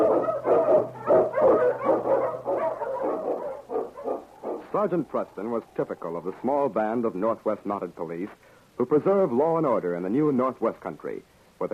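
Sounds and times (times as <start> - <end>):
Eskimo sled dogs barking and howling in the Yukon: 0.0 - 6.1
faint low hum: 0.0 - 11.7
speech: 4.8 - 11.7.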